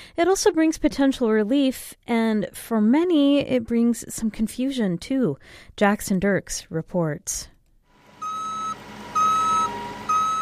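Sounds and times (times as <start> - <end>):
speech: 0.2 - 7.5
cargo truck reverse alarm beeps: 8.2 - 10.4.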